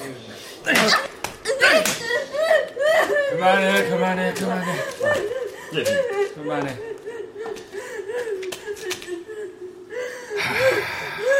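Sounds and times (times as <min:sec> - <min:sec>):
speech: 0:00.7 - 0:01.1, 0:03.4 - 0:07.0
sharp loud slap to the face: 0:00.7 - 0:02.1
laughter: 0:01.7 - 0:11.3.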